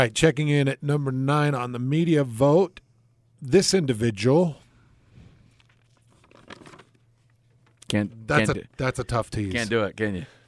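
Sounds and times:
speech: 0:00.0 - 0:02.8, 0:03.4 - 0:04.6, 0:07.9 - 0:10.4
paper being crumpled and handled: 0:05.4 - 0:08.0.

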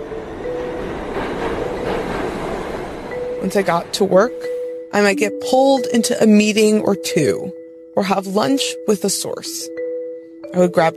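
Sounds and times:
commuter train rumbling along the rails heard from inside a moving car: 0:00.0 - 0:06.0
speech: 0:03.4 - 0:09.8, 0:10.5 - 0:10.9.

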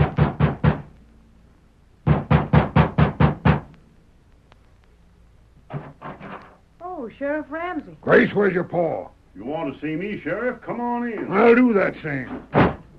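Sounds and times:
knocking on a wooden door: 0:00.0 - 0:00.9, 0:02.0 - 0:03.7, 0:05.7 - 0:06.4, 0:12.4 - 0:12.9
speech: 0:07.1 - 0:12.7.

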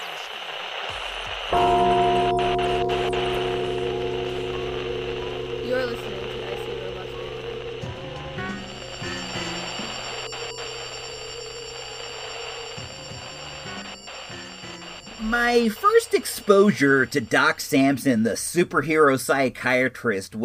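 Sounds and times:
gong strike: 0:01.5 - 0:10.6
speech: 0:15.4 - 0:20.4.

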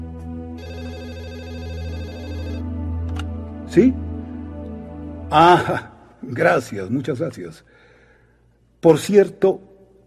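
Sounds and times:
telephone ringing with a bright electronic tone: 0:00.6 - 0:02.7
speech: 0:03.7 - 0:04.0, 0:05.3 - 0:07.8, 0:08.8 - 0:09.7.

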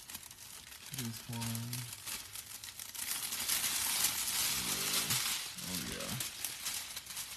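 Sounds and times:
shiny silver wrapping paper crinkling while being handled: 0:00.0 - 0:07.3
speech: 0:01.0 - 0:02.0
person murmuring: 0:04.5 - 0:06.3.

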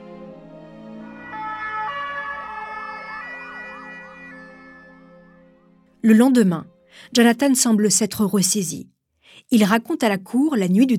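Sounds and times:
ambulance siren wailing: 0:01.0 - 0:05.8
steady high tones: 0:01.0 - 0:05.8
speech: 0:06.0 - 0:10.9.

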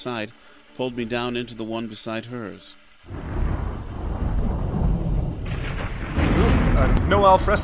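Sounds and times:
speech: 0:00.0 - 0:03.4, 0:06.8 - 0:07.6
faint rain hiss: 0:00.0 - 0:07.6
thunder rumbling in a storm: 0:03.1 - 0:07.6.

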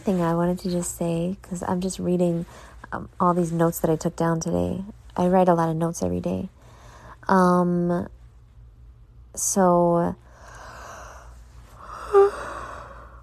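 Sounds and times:
speech: 0:00.0 - 0:06.6, 0:07.2 - 0:08.2, 0:09.4 - 0:10.2
person yawning: 0:12.0 - 0:12.8.

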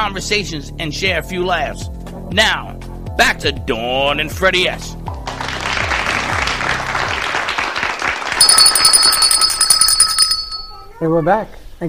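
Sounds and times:
speech: 0:00.0 - 0:05.2, 0:11.0 - 0:11.8
crowd applause and clapping: 0:05.2 - 0:09.3
red bell ringing: 0:08.4 - 0:11.0.

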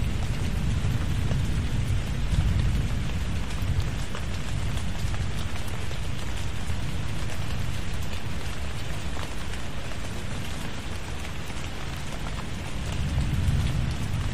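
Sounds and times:
deep rolling rumble of thunder in a tropical thunderstorm: 0:00.0 - 0:05.6, 0:12.6 - 0:14.3
heavy tropical rain pouring with drops striking surfaces: 0:00.0 - 0:14.3.

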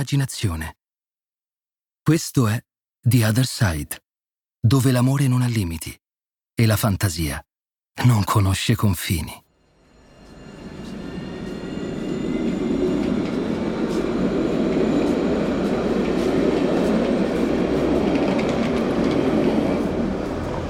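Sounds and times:
speech: 0:00.0 - 0:00.8, 0:02.1 - 0:04.0, 0:04.6 - 0:06.0, 0:06.6 - 0:09.4
high metallic squeals of a train: 0:09.6 - 0:16.6
train rumbling on rails: 0:09.7 - 0:20.6.

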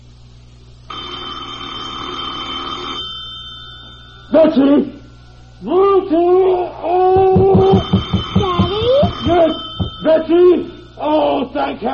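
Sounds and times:
telephone ringing with a steady buzzy ring: 0:00.9 - 0:05.5, 0:07.2 - 0:11.0
speech: 0:04.4 - 0:05.0, 0:05.6 - 0:07.0, 0:09.4 - 0:11.9.

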